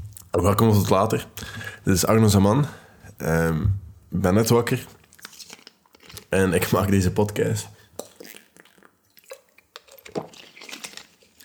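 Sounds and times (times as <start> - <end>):
sipping and swallowing water: 0.0 - 3.3, 4.0 - 11.4
speech: 0.4 - 5.0, 6.3 - 7.8
wet mouth clicks: 4.9 - 6.9, 7.8 - 11.4.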